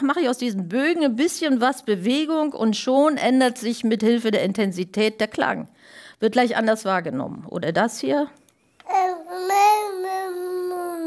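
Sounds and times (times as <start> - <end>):
speech: 0.0 - 9.6
two-month-old baby babbling: 8.9 - 11.0.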